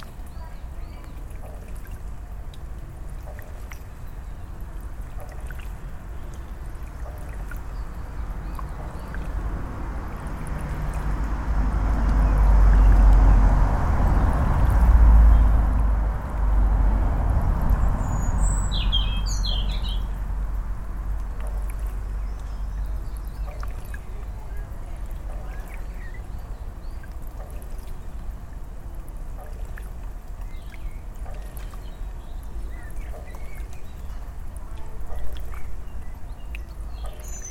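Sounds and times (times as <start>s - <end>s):
low traffic rumble: 0.0s - 37.5s
water lapping by a solar powered water pump: 0.0s - 37.5s
vehicle or boat passing: 8.6s - 21.9s.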